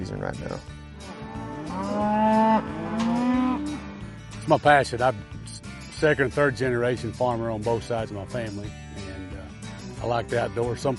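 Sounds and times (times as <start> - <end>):
speech: 0.0 - 1.1, 4.5 - 5.4, 6.0 - 8.8, 10.0 - 10.9
cattle mooing: 1.0 - 4.1.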